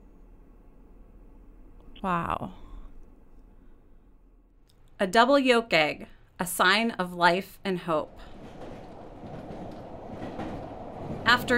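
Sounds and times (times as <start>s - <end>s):
speech: 2.0s - 2.6s, 5.0s - 8.4s, 11.3s - 11.5s
train clattering along rails: 7.8s - 11.5s.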